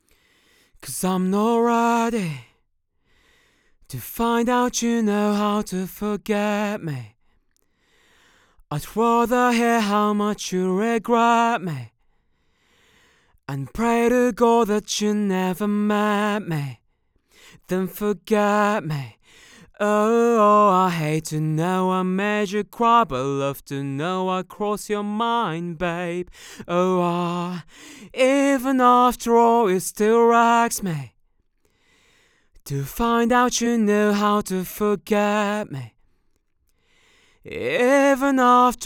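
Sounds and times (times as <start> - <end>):
dry male vocal: 0.8 - 2.5, 3.9 - 7.1, 8.7 - 11.9, 13.5 - 16.8, 17.6 - 31.2, 32.6 - 36.0, 37.4 - 38.8.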